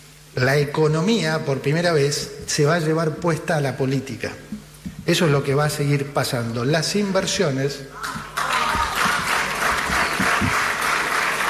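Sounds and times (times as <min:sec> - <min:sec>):
speech: 0:00.4 - 0:08.3
audience applauding after a speech: 0:08.0 - 0:11.4.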